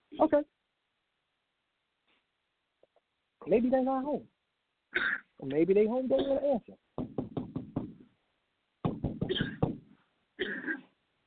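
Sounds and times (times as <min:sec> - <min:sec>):
speech: 0:00.2 - 0:00.6, 0:03.4 - 0:04.3, 0:04.9 - 0:06.8
knocking on a door: 0:07.0 - 0:08.1, 0:08.8 - 0:09.9.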